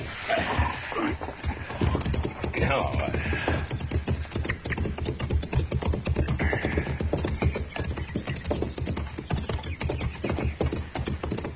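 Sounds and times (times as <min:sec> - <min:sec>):
several horses clip-clopping: 0:00.0 - 0:11.5
speech: 0:02.7 - 0:03.6.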